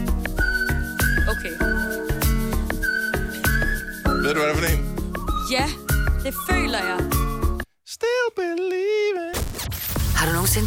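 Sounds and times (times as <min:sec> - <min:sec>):
song with steady drum hits and backing instruments: 0:00.0 - 0:07.6
bright whistled melody with long sustained notes: 0:00.1 - 0:07.6
speech: 0:04.3 - 0:04.9, 0:05.5 - 0:07.2, 0:08.0 - 0:09.4, 0:10.2 - 0:10.6.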